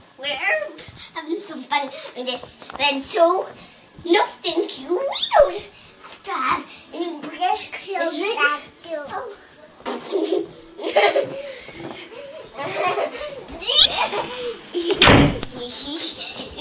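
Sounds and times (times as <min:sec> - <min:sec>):
speech: 0:01.5 - 0:11.9, 0:12.6 - 0:16.5
children laughing in the room: 0:09.9 - 0:15.0
door shutting with a solid thud: 0:14.2 - 0:15.6.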